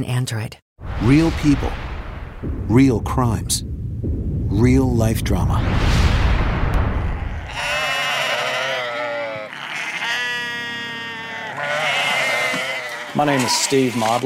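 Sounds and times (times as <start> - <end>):
speech: 0.0 - 6.0, 13.2 - 14.2
low rumbling noise: 0.8 - 8.6
sheep bleating on a small farm: 7.4 - 14.2.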